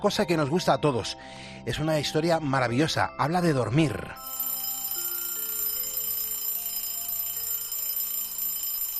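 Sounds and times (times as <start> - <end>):
speech: 0.0 - 4.4
alarm clock ringing with a shrill metallic jangle: 4.2 - 8.9.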